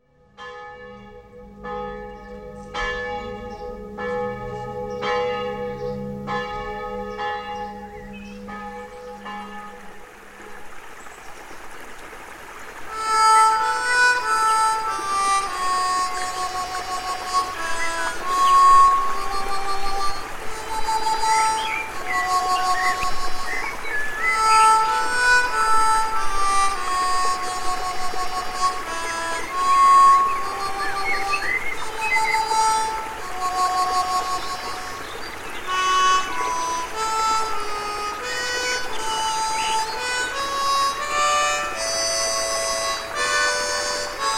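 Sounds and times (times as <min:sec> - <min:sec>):
solo harmonica in D and A: 0:00.0 - 0:10.1, 0:12.9 - 0:44.3.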